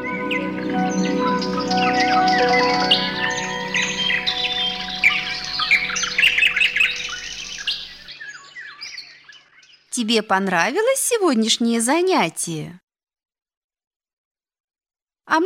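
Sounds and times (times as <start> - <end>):
many birds chirping and tweeting in a forest thicket: 0.0 - 12.3
speech: 10.0 - 12.8, 15.3 - 15.4.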